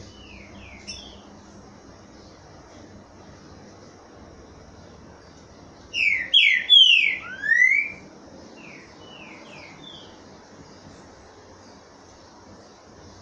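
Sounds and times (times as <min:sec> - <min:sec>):
Green-winged Saltator singing rich slurred whistles, Boiadeiro song type: 0:00.0 - 0:01.2, 0:05.9 - 0:08.0, 0:08.6 - 0:10.2
steady hiss: 0:00.0 - 0:06.0, 0:07.2 - 0:13.1.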